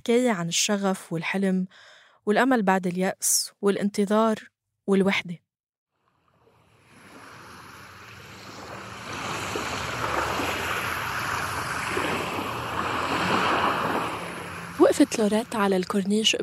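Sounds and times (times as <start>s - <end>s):
speech: 0.0s - 5.4s, 15.0s - 16.4s
wind over the sea: 6.3s - 16.4s
sea waves crashing against rocks: 6.9s - 15.7s.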